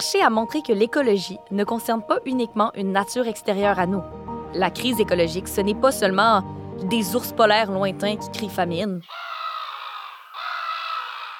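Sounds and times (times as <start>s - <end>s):
speech: 0.0s - 9.2s
sound effect of seagulls crying: 9.0s - 11.3s.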